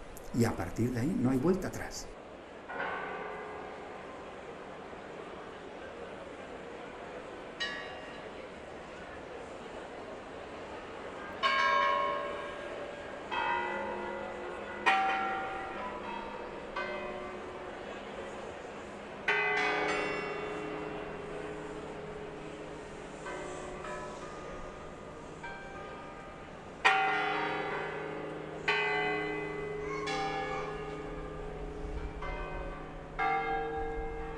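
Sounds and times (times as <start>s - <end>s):
church bells ringing from a bell tower: 0.2s - 2.1s, 2.7s - 4.6s, 7.6s - 8.3s, 11.3s - 34.3s
speech: 0.3s - 2.2s.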